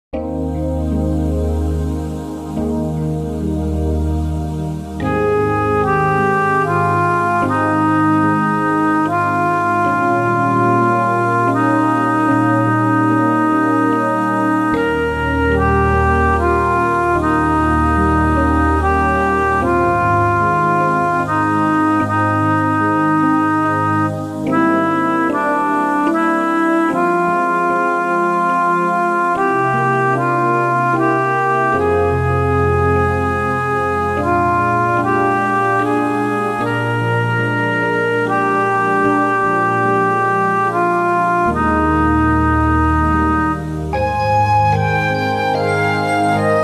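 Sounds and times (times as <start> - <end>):
clarinets playing: 0.2 - 46.6.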